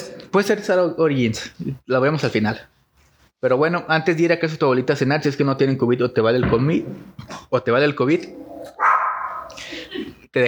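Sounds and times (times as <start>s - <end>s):
speech: 0.3s - 2.7s, 3.4s - 8.8s
dog barking and yelping: 8.5s - 9.6s.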